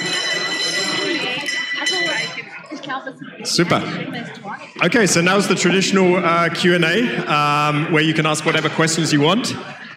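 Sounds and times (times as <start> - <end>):
bell ringing: 0.0 - 2.8
bustle: 0.0 - 9.9
murmuring voices: 0.0 - 9.9
laughter: 2.4 - 9.9
speech: 2.9 - 9.8.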